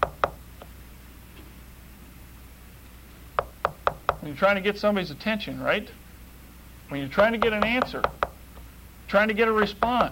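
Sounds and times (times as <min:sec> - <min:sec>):
sharp knocking on a door: 0:00.0 - 0:00.4, 0:03.4 - 0:04.2, 0:07.4 - 0:08.4
speech: 0:04.3 - 0:06.0, 0:06.9 - 0:08.2, 0:09.1 - 0:10.1.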